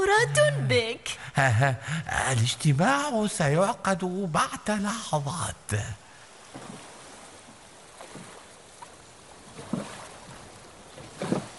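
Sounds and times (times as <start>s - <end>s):
wind: 0.0s - 11.5s
speech: 0.1s - 6.0s
boat hull slapping and splashing across water: 6.3s - 11.5s
steady wash of water: 6.3s - 11.5s.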